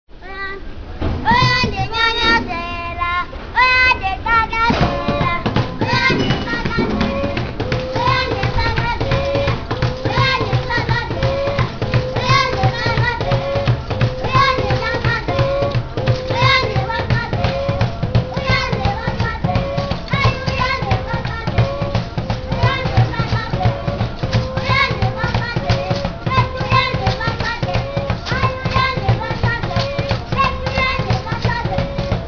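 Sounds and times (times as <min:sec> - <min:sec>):
African children: 0:00.1 - 0:32.2.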